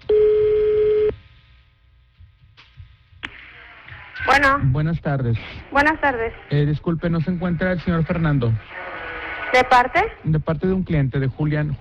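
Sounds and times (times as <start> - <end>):
telephone line tone while dialing: 0.0 - 1.1
speech: 4.4 - 8.9, 9.5 - 11.7.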